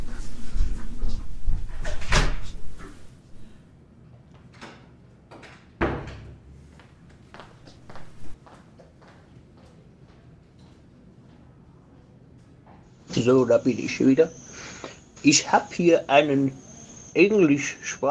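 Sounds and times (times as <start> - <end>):
footsteps and shuffling: 0.0 - 3.5, 6.5 - 11.4
door opening and closing: 0.2 - 3.1, 4.6 - 6.4
speech: 13.2 - 14.4, 15.2 - 16.6, 17.2 - 18.0.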